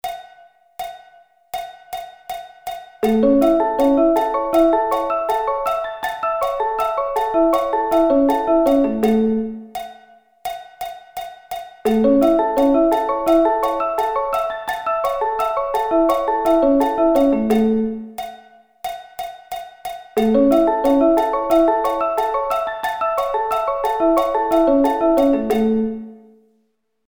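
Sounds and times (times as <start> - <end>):
A arpeggio inversions: 3.0 - 9.6, 11.9 - 18.1, 20.2 - 26.3.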